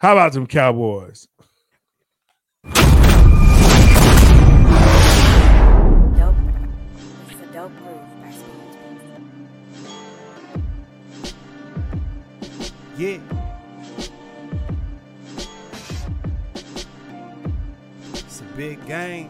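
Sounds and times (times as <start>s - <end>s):
speech: 0.0s - 1.4s, 13.0s - 13.4s, 18.6s - 19.2s
cannon boom: 2.7s - 7.0s.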